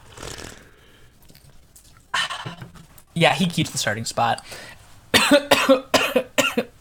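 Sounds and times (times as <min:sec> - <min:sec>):
speech: 0:03.2 - 0:04.7, 0:05.3 - 0:05.9
harsh choking coughs after something went down the wrong way: 0:05.2 - 0:06.7.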